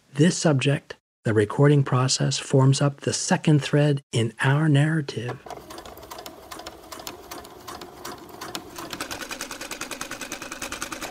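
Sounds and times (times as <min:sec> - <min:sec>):
speech: 0:00.2 - 0:05.6
sewing machine running: 0:05.4 - 0:11.0.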